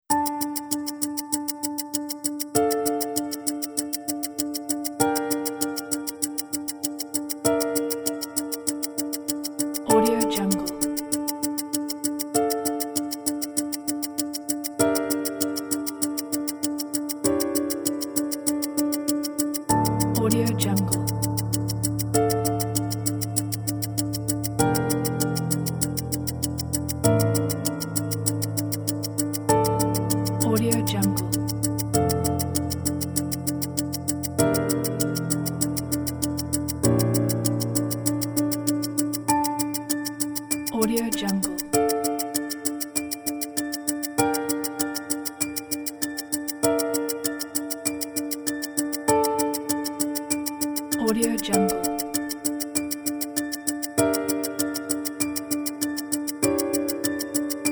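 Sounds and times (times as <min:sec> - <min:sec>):
tense piano music: 0:00.1 - 0:57.7
ticking: 0:00.1 - 0:57.7.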